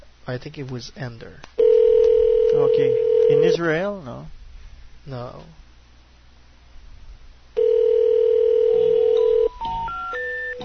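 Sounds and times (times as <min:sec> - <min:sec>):
speech: 0:00.3 - 0:01.6, 0:02.6 - 0:04.4, 0:05.0 - 0:05.6
telephone dial tone: 0:01.6 - 0:03.4, 0:07.6 - 0:09.5.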